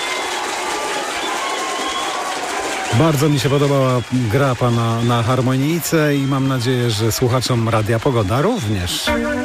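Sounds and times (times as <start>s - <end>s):
applause for a harmonica performance: 0.0s - 9.0s
speech: 3.0s - 9.4s.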